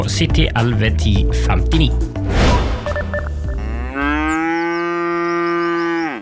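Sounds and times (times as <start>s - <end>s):
speech: 0.0s - 2.4s
cow mooing on outfield pasture: 3.4s - 6.2s.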